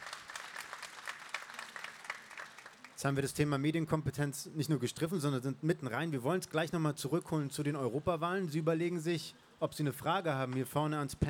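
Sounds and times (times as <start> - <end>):
audience applause at a panel discussion: 0.0 - 3.0
speech: 3.0 - 11.2.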